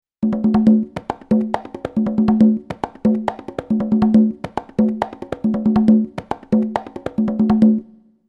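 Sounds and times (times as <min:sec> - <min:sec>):
conga loop from Roland XP-80: 0:00.2 - 0:08.0.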